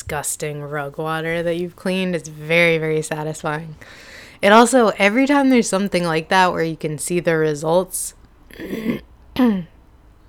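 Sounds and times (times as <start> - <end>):
speech: 0.1 - 9.7
throat clearing after heavy cleaning with bleach: 8.5 - 9.8.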